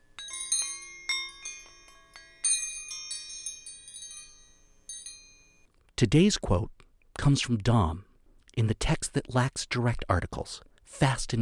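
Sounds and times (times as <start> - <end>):
metal wrenches struck together, chiming: 0.0 - 5.7
speech: 6.0 - 11.4.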